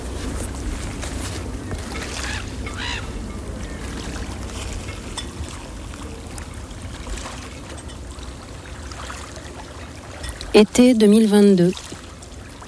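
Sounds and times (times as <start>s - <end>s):
constant low hum of a moored sailboat on a calm gulf: 0.0s - 8.9s
birds honking: 1.7s - 4.4s
speech: 10.6s - 11.8s.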